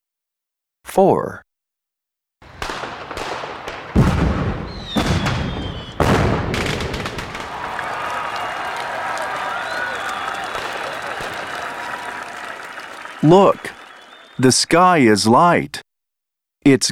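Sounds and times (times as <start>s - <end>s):
speech: 1.0s - 1.4s, 13.2s - 13.8s, 14.4s - 15.8s, 16.6s - 16.9s
fireworks exploding: 2.4s - 14.4s.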